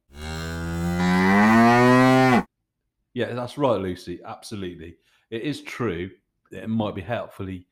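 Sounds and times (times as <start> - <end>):
cow mooing: 0.1 - 2.5
speech: 3.2 - 7.7.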